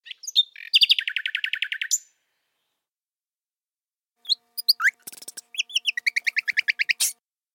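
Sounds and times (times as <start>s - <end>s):
common nightingale singing: 0.0s - 2.7s, 4.2s - 7.2s.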